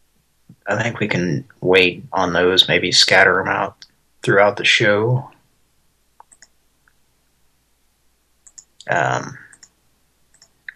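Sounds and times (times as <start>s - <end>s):
speech: 0.7s - 5.3s, 8.8s - 9.4s
computer mouse clicks while copying and pasting: 6.2s - 6.6s, 8.4s - 8.9s, 9.5s - 10.7s.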